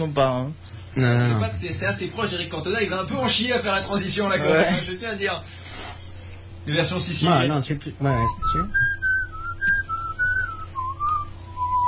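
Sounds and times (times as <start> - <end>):
speech: 0.0 - 5.6, 6.6 - 9.0
low hum: 0.0 - 11.8
person whistling a clear wavering melody: 8.2 - 11.8.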